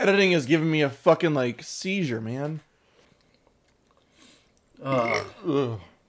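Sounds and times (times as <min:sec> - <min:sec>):
speech: 0:00.0 - 0:02.7, 0:04.8 - 0:05.9
burp after drinking warm beer: 0:04.8 - 0:05.9.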